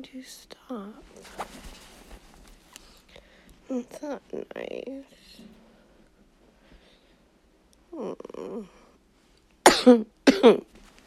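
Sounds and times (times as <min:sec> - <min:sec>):
speech: 0:00.0 - 0:01.9, 0:03.7 - 0:05.6, 0:07.9 - 0:08.8, 0:09.8 - 0:10.8
sharp harsh coughs: 0:09.6 - 0:10.7
low raspy throat clearing: 0:09.7 - 0:10.7.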